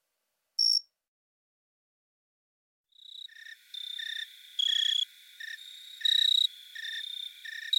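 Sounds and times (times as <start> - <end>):
jumping bush cricket Orocharis saltator chirping: 0.6 - 0.8, 2.9 - 7.7.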